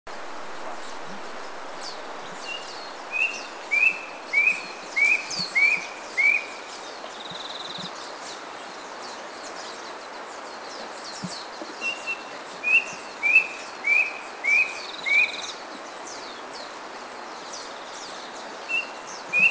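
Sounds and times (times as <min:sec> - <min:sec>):
Brush Cuckoo Cacomantis variolosus calling in Kitanglad: 0:02.4 - 0:06.7, 0:11.8 - 0:15.5, 0:18.7 - 0:19.5.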